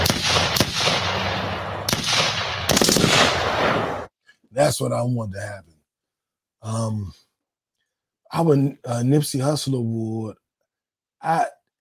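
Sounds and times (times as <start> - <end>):
gunfire sound effect: 0.0 - 4.1
speech: 4.6 - 5.7, 6.6 - 7.2, 8.3 - 10.4, 11.2 - 11.7.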